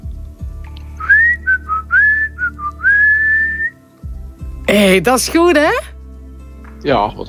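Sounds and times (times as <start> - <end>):
person whistling a short bright melody: 1.0 - 3.8
speech: 4.7 - 5.9, 6.8 - 7.2.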